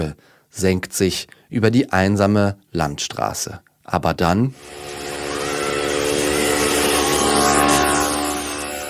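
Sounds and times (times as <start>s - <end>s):
speech: 0.0s - 5.1s
moped engine droning past on a quiet road: 4.6s - 8.8s.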